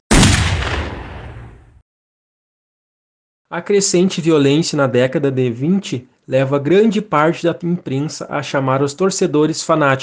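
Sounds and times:
firearm gunshot with long rumbling echo: 0.1 - 1.8
speech: 3.5 - 10.0.

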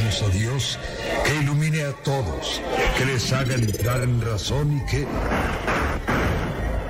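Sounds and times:
speech: 0.1 - 5.8
gunshots: 5.1 - 6.8.

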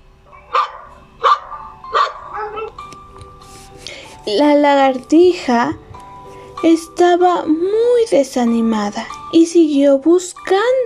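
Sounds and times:
dog barking: 0.3 - 2.8
speech: 4.2 - 5.8, 6.6 - 10.8.

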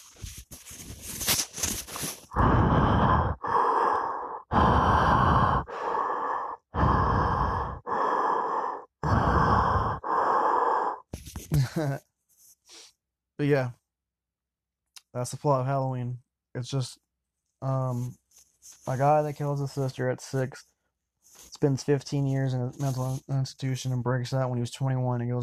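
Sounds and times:
voice imitating a horror-film killer's slow heavy breathing: 2.0 - 11.9
speech: 13.4 - 13.8, 15.1 - 17.0, 17.6 - 18.2, 18.9 - 20.7, 21.6 - 25.4.

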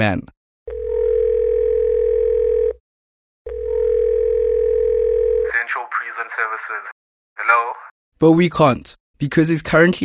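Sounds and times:
speech: 0.0 - 0.4, 8.2 - 10.0
telephone ringback tone from an outgoing call to Tanzania: 0.7 - 2.8, 3.5 - 5.5.

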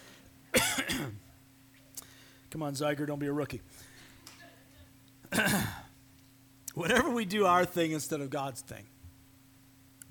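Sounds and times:
harsh cough after choking on a cough drop: 0.5 - 1.2, 5.3 - 5.9
speech: 2.5 - 3.9, 6.8 - 8.9.

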